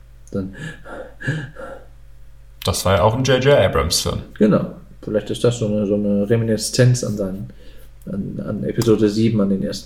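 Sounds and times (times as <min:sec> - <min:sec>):
speech: 0:00.3 - 0:01.6, 0:02.7 - 0:09.8
heavy raspy breathing: 0:00.5 - 0:01.9, 0:07.5 - 0:08.0.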